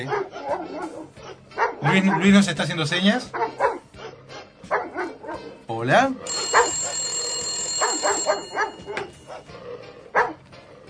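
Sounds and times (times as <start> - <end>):
speech: 0.0 - 3.7, 5.8 - 6.7
telephone ringing sound effect: 6.3 - 9.3.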